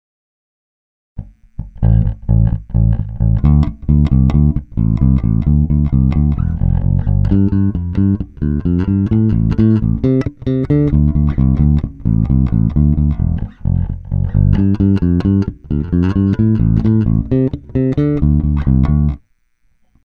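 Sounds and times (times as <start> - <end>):
Bartolini passive bass guitar played fingerstyle: 1.2 - 19.2.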